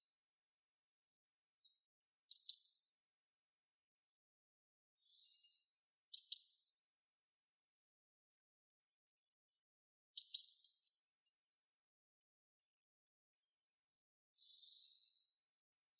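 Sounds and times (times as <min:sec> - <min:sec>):
bird giving high thin chirps and descending trill: 0:02.1 - 0:03.1, 0:05.1 - 0:06.9, 0:10.2 - 0:11.2, 0:14.4 - 0:15.9.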